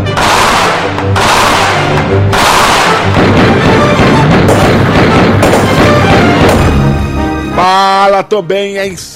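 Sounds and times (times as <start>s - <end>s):
loud booming gunshot blasts: 0.0s - 6.9s
speech: 8.2s - 9.1s.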